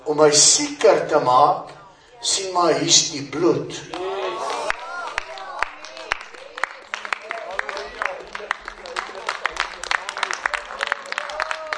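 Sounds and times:
speech: 0:00.1 - 0:04.0
voices calling out and speaking over applause: 0:03.9 - 0:08.3
crowd clapping: 0:03.9 - 0:11.7.

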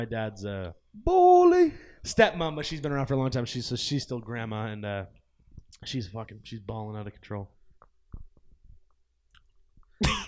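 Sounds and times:
speech: 0:00.0 - 0:07.6
gum being chewed: 0:07.8 - 0:10.0.

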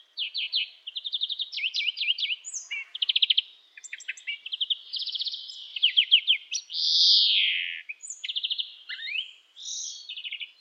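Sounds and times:
greenfinch Carduelis chloris: 0:00.2 - 0:10.5.

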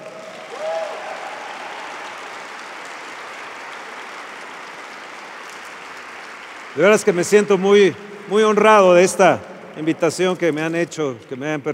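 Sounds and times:
audience applauding: 0:00.0 - 0:11.1
speech: 0:06.8 - 0:11.7.

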